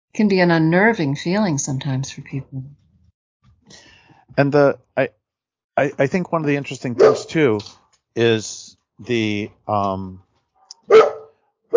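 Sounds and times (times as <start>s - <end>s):
speech: 0.2s - 2.8s, 4.4s - 5.2s, 5.8s - 10.2s, 10.9s - 11.1s
dogs barking: 7.0s - 7.4s, 10.7s - 11.7s.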